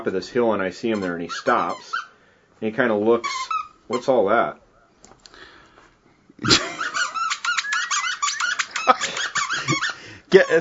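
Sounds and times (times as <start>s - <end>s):
speech: 0.0s - 4.6s, 6.4s - 6.6s, 10.3s - 10.5s
dog chewing a small squeaky milk cow toy: 0.9s - 2.2s, 3.2s - 4.2s, 6.6s - 10.5s.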